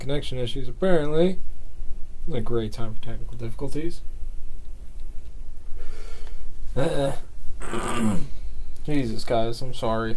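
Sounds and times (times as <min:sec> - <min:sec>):
speech: 0:00.0 - 0:01.5, 0:02.3 - 0:04.1, 0:06.8 - 0:10.1
soft breathy noise: 0:05.6 - 0:07.3
rough gravelly throat clearing: 0:06.8 - 0:08.3.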